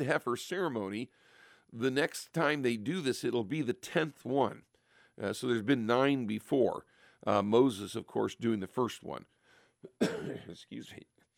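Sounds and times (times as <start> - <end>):
speech: 0.0 - 11.3
soft lingering harsh throaty cough: 9.8 - 10.7.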